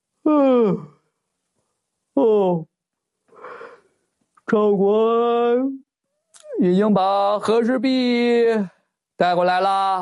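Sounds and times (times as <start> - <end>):
person performing a yawn with voiced groans: 0.2 - 1.0
speech: 0.6 - 0.9, 2.2 - 2.7, 4.5 - 5.9, 6.5 - 9.9.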